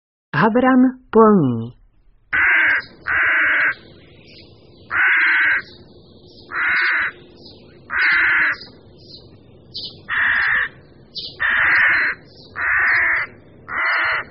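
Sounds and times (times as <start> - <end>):
speech: 0.4 - 2.4
rooks calling from a nesting colony: 2.3 - 9.2, 9.8 - 14.2
faint calls from other birds: 2.3 - 14.2.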